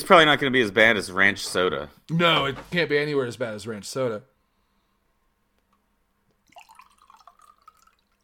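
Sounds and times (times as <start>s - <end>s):
speech: 0.1s - 4.3s
dark drink pouring into a glass: 6.4s - 8.2s.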